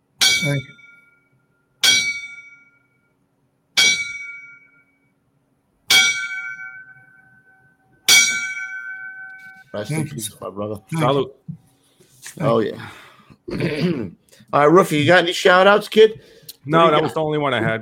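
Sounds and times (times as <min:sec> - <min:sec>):
bell rung as memorial salute: 0:00.2 - 0:03.0, 0:03.8 - 0:05.1, 0:05.9 - 0:10.1
speech: 0:00.4 - 0:00.8, 0:09.7 - 0:11.6, 0:12.3 - 0:17.8.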